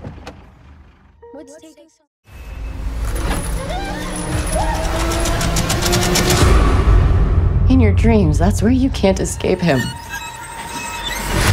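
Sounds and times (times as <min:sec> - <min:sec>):
speech: 0:01.4 - 0:02.1, 0:07.8 - 0:10.0
heavy tow truck engine roaring: 0:02.4 - 0:11.4.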